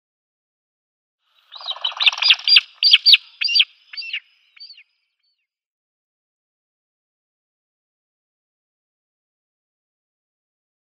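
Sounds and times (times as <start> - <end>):
Barbary partridge calls: 1.4 - 4.9.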